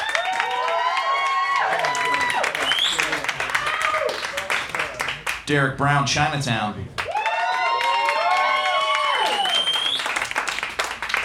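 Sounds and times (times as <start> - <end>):
audience whoops and shouted voices: 0.0 - 4.2, 7.1 - 10.1
crowd clapping for a comedian: 0.0 - 5.5, 7.0 - 11.2
speech: 5.5 - 7.0.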